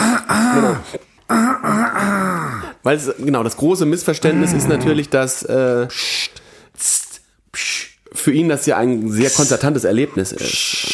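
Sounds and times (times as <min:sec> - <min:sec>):
person mimicking an audience member's throat clearing at a concert: 0:00.0 - 0:02.7
speech: 0:00.6 - 0:01.6, 0:02.8 - 0:07.0, 0:07.6 - 0:10.9.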